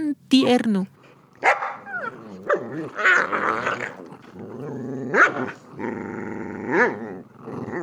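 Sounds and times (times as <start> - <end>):
speech: 0.3 - 1.6, 2.5 - 7.0
puppy growling: 0.9 - 7.8
puppy barking playfully: 1.4 - 4.0, 5.1 - 5.6.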